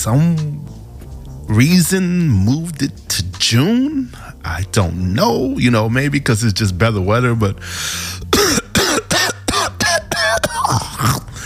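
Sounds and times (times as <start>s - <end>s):
speech: 0.0s - 0.6s, 1.5s - 8.6s
harsh rasping coughs: 8.2s - 11.4s
throat clearing: 8.3s - 11.4s.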